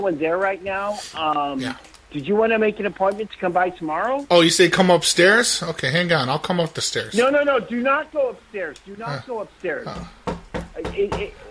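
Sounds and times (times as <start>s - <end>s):
speech: 0.0s - 10.2s, 10.8s - 11.4s
firm knocks on a door: 9.9s - 11.4s.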